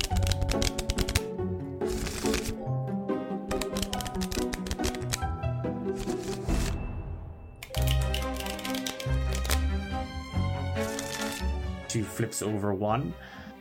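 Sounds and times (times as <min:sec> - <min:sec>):
playing cards being shuffled: 0:00.0 - 0:02.7, 0:03.5 - 0:06.8, 0:07.7 - 0:11.6
speech: 0:12.2 - 0:13.3.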